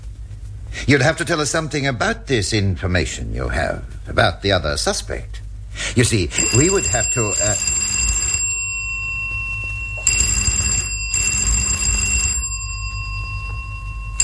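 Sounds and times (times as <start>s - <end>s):
speech: 0.9s - 7.9s
telephone ringing in bright metallic bursts: 6.3s - 14.2s.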